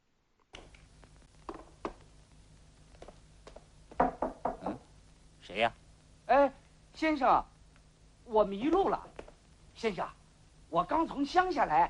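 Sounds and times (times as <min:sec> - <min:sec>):
low hum: 0:00.1 - 0:11.8
knocking on a door at night: 0:03.9 - 0:04.8
speech: 0:05.5 - 0:07.5, 0:08.3 - 0:09.1, 0:09.8 - 0:11.8.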